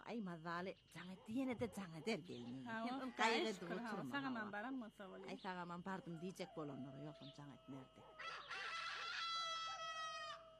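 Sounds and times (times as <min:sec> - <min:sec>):
speech: 0:00.1 - 0:08.6
rooster crowing: 0:06.0 - 0:10.5.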